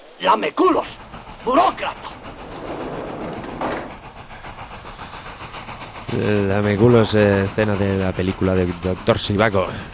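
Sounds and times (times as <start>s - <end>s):
train running on rails: 0.0s - 9.9s
speech: 0.2s - 2.1s, 6.1s - 9.9s
train wheels clattering: 1.5s - 6.2s.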